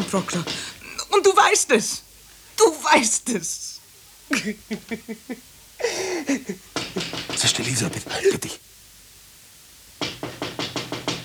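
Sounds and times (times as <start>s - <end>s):
knocking on a window: 0.0s - 0.7s, 6.7s - 8.6s, 10.0s - 11.2s
laughter: 0.0s - 0.8s, 4.3s - 8.6s
speech: 0.1s - 5.5s, 6.2s - 8.8s.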